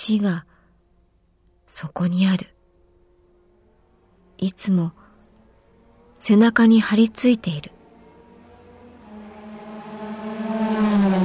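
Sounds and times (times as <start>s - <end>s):
speech: 0.0s - 0.5s, 1.7s - 2.5s, 4.4s - 5.0s, 6.2s - 7.8s
race car engine roaring: 2.8s - 6.2s, 7.4s - 11.2s.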